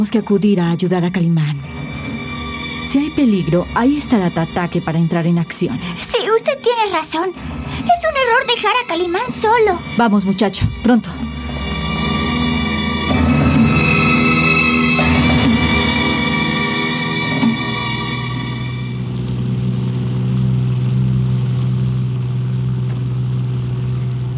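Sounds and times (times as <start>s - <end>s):
speech: 0.0s - 2.1s, 2.8s - 11.4s
car engine humming while driving: 10.7s - 24.3s.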